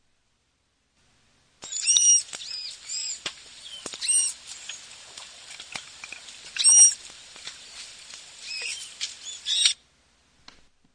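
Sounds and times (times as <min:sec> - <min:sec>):
faint hiss: 0:00.0 - 0:10.9
high-pitched manatee chirps and squeaky whistles: 0:01.6 - 0:05.1, 0:06.0 - 0:09.8.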